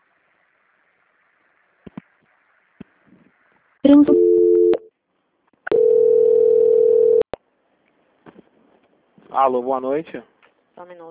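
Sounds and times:
speech: 3.8s - 4.3s, 9.4s - 11.1s
telephone line tones as a call is transferred: 4.0s - 4.9s, 5.7s - 7.2s.

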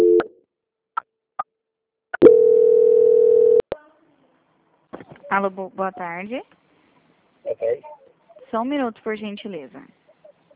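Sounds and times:
telephone call transfer tone on a customer-service call: 2.2s - 3.6s
speech: 5.3s - 6.6s, 7.6s - 10.0s.

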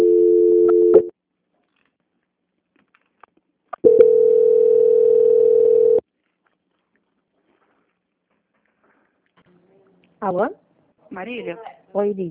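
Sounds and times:
telephone line tone during a call transfer: 0.0s - 1.1s, 3.8s - 6.0s
speech: 10.3s - 12.2s.

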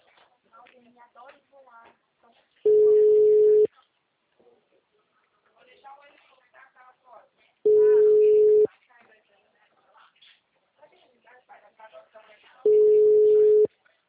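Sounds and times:
telephone ringback tone while calling someone: 2.7s - 3.7s, 7.7s - 8.7s, 12.7s - 13.7s.

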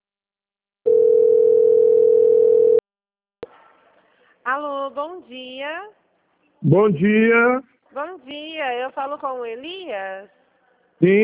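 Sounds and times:
telephone dial tone while placing a call: 0.9s - 2.8s
speech: 4.5s - 6.0s, 6.6s - 10.4s, 11.0s - 11.2s.

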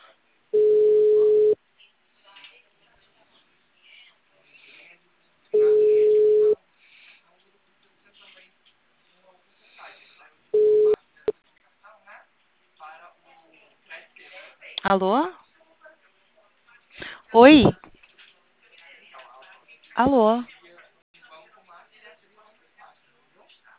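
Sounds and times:
ringback tone of an outgoing phone call: 0.6s - 1.6s, 5.6s - 6.6s, 10.6s - 11.0s
speech: 14.8s - 15.4s, 17.3s - 17.8s, 20.0s - 20.6s.

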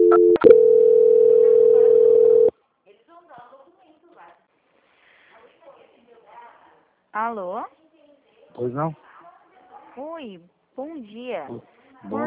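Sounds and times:
telephone line click during call transfer: 0.0s - 2.5s
speech: 7.3s - 7.8s, 8.6s - 9.1s, 10.0s - 12.2s.

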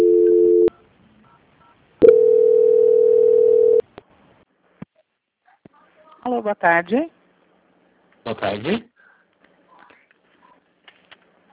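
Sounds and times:
telephone line tones during call transfer: 0.0s - 0.8s, 2.0s - 3.8s
speech: 6.4s - 7.2s, 8.2s - 8.9s.

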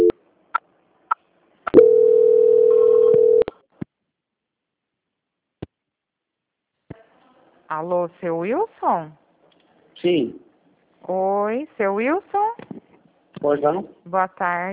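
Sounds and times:
telephone call transfer tone on a customer service call: 1.8s - 3.5s
speech: 7.8s - 9.2s, 10.0s - 10.4s, 11.0s - 12.6s, 13.4s - 14.7s.

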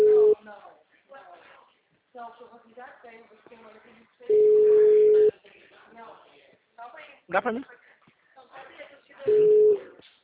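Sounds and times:
telephone ringback tone while a call is being placed: 0.0s - 0.4s, 4.3s - 5.3s, 9.3s - 9.9s
speech: 7.0s - 7.8s, 9.2s - 9.6s.

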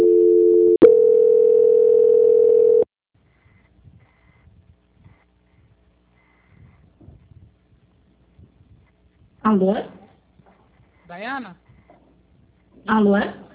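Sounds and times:
telephone call transfer tone: 0.0s - 3.6s
speech: 9.5s - 10.0s, 11.1s - 11.6s, 12.8s - 13.4s.

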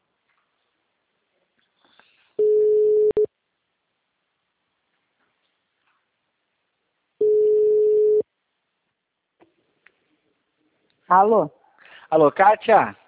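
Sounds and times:
telephone ringback tone on an outgoing call: 2.4s - 3.3s, 7.2s - 8.2s
speech: 11.1s - 13.0s.

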